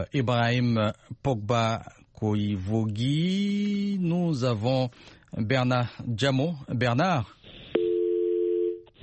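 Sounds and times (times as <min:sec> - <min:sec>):
speech: 0:00.0 - 0:07.4
loud steady telephone dial tone: 0:07.8 - 0:08.8.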